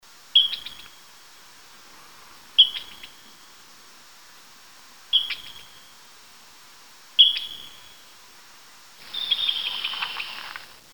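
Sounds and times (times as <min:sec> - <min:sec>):
flying squirrel call: 0:00.0 - 0:10.9.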